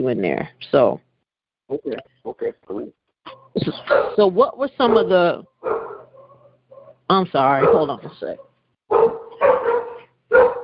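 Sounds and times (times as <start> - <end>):
speech: 0.0 - 1.1, 1.7 - 6.0, 7.1 - 9.6
dog barking: 3.8 - 4.2, 4.8 - 7.0, 7.6 - 10.6.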